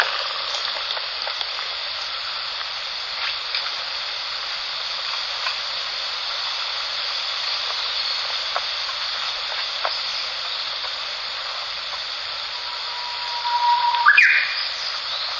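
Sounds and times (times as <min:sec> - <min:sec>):
continuous hiss: 0:00.0 - 0:15.3
Japanese bush warbler singing: 0:12.5 - 0:15.3.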